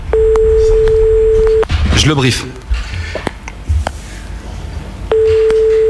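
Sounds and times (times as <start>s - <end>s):
steady ringing tone on a phone line: 0.1s - 1.7s, 5.1s - 5.8s
speech: 2.0s - 2.6s.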